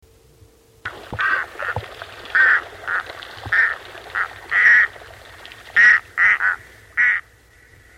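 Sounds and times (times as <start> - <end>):
loon kark calls: 1.1 - 7.3.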